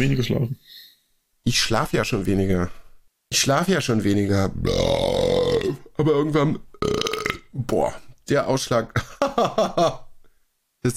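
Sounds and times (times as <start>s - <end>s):
speech: 0.0s - 0.8s, 1.4s - 10.0s
loud drawn-out voiced burp: 4.6s - 5.9s, 6.8s - 7.5s.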